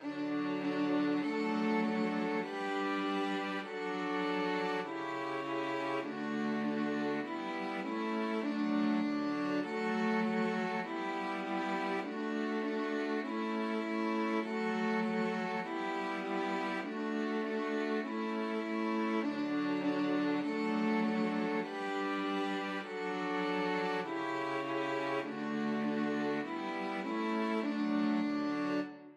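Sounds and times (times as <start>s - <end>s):
string quartet playing a nursery rhyme: 0.0s - 29.1s.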